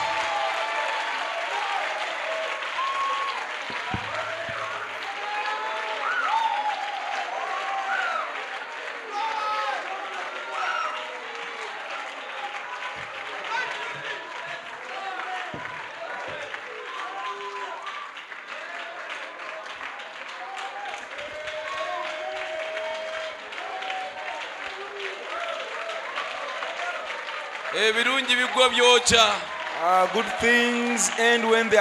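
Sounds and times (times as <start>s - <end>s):
audience applause: 0.0s - 31.7s
voices and cheers: 0.0s - 31.7s
speech: 27.8s - 31.7s.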